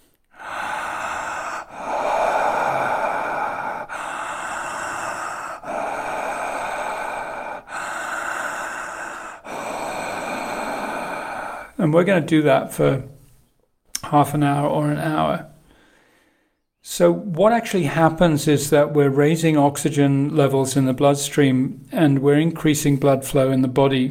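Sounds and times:
conscious connected breathing through the mouth: 0:00.0 - 0:12.0, 0:15.6 - 0:16.7
speech: 0:11.8 - 0:13.1, 0:14.1 - 0:15.5, 0:17.0 - 0:24.0.

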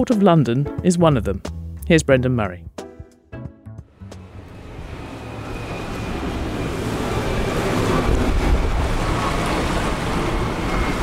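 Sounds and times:
speech: 0:00.0 - 0:02.7
boat engine low continuous rumble: 0:03.9 - 0:11.0
wind buffeting the microphone: 0:07.1 - 0:11.0.

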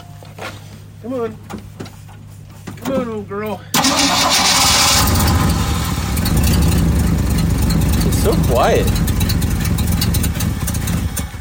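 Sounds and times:
speech: 0:00.4 - 0:01.7, 0:02.9 - 0:05.5, 0:08.2 - 0:09.1
car engine cranking in very cold weather and starting: 0:03.7 - 0:11.4.

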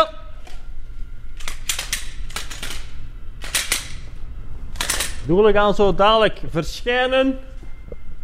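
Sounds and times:
low steady rumble: 0:00.1 - 0:08.2
sharp metallic clicks and clacks of handguns being loaded and racked: 0:01.4 - 0:04.0, 0:04.8 - 0:05.3
speech: 0:05.3 - 0:07.5.

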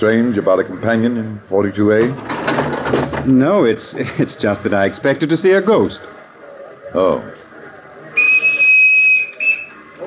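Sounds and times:
speech: 0:00.0 - 0:02.6, 0:03.2 - 0:06.2, 0:06.9 - 0:07.4
passenger train whistle blowing as train departs: 0:08.2 - 0:09.8.

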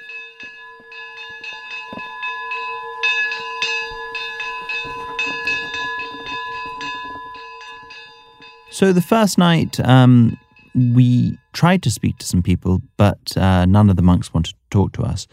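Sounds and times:
several church bells pealing: 0:00.0 - 0:12.8
speech: 0:08.8 - 0:15.3.

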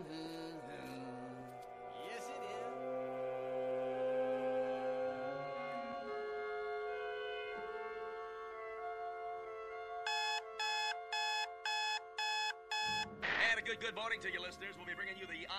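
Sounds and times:
sustained music: 0:00.1 - 0:10.6, 0:12.9 - 0:15.5
alarm clock beeping: 0:10.1 - 0:13.1
speech: 0:13.7 - 0:15.5.

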